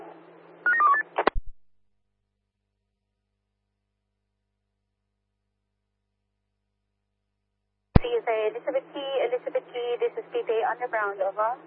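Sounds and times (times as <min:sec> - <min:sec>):
faint steady hum: 0:00.0 - 0:01.5, 0:08.0 - 0:11.6
telephone dialing tones: 0:00.7 - 0:01.0
speech: 0:10.7 - 0:11.6.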